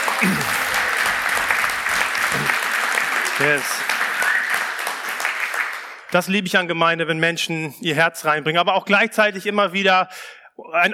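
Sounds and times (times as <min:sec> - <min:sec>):
room full of people applauding: 0:00.0 - 0:06.2
speech: 0:00.2 - 0:00.6, 0:03.4 - 0:03.9, 0:06.1 - 0:10.9.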